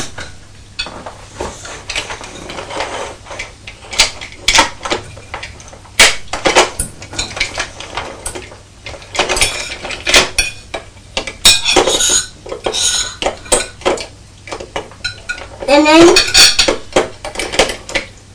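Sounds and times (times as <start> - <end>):
pots and cutlery clattering while being washed up after a meal: 1.9 - 18.0
squeaky scrape: 11.9 - 13.2.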